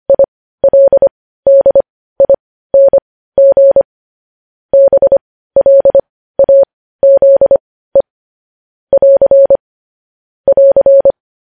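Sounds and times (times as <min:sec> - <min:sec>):
Morse code beeps on a single mid-pitched tone: 0:00.1 - 0:03.9, 0:04.8 - 0:07.6, 0:08.9 - 0:09.6, 0:10.5 - 0:11.2.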